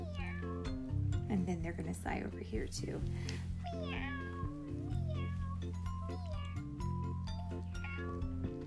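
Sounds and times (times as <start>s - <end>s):
cat meowing: 0.0s - 0.6s, 3.6s - 8.5s
musical backing with sustained low tones: 0.0s - 8.6s
speech: 1.3s - 4.2s.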